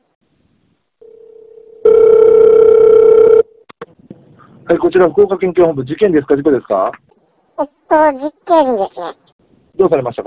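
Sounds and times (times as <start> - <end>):
loud steady telephone ringback tone during call transfer: 1.0 - 3.6
speech: 4.7 - 10.2.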